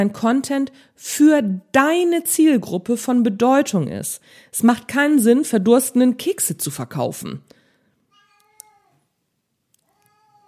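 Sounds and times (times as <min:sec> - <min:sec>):
speech: 0:00.0 - 0:07.6
cat meowing: 0:08.1 - 0:09.0.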